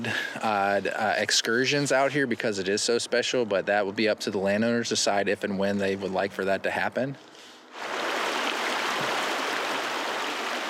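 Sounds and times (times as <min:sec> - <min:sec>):
speech: 0:00.0 - 0:07.3
creek waterfall roaring: 0:07.8 - 0:10.6.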